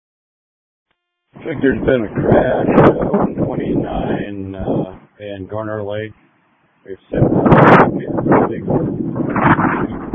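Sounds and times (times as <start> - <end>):
wind buffeting a radio microphone on an emergency dispatch channel: 1.4 - 5.7, 7.1 - 10.1
speech: 1.4 - 6.2, 6.8 - 10.1.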